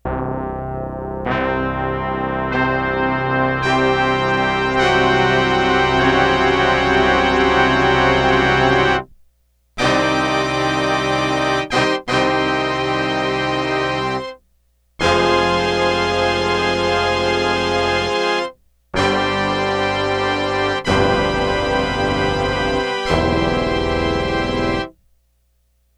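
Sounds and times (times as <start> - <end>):
horn section over two octaves: 1.2 - 9.1, 9.8 - 14.4, 15.0 - 24.9.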